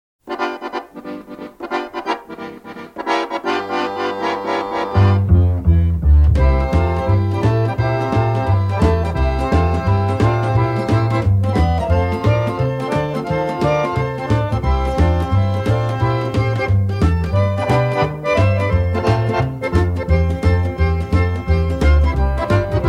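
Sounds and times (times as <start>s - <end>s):
accordion boogie: 0.2s - 22.8s.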